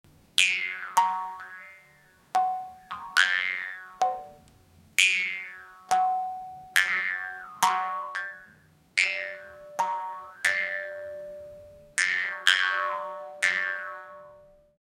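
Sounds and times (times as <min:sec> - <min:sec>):
playful jaw harp boing: 0:00.4 - 0:04.4, 0:05.0 - 0:14.5.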